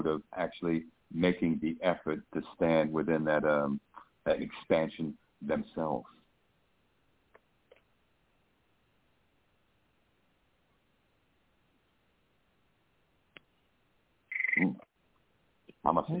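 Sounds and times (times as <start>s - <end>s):
speech: 0.0s - 6.2s, 15.9s - 16.1s
frog croaking: 14.3s - 14.8s.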